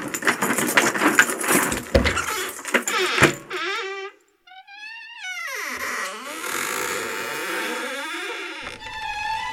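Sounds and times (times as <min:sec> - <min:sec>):
bunch of keys jangling and rattling: 0:00.0 - 0:03.4
long wavering high-pitched creak: 0:02.2 - 0:09.4.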